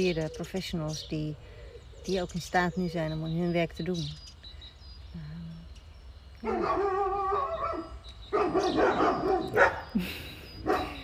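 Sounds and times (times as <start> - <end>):
speech: 0.0 - 4.3, 6.4 - 7.2, 8.5 - 10.2
neighbours' dogs barking: 6.4 - 11.0.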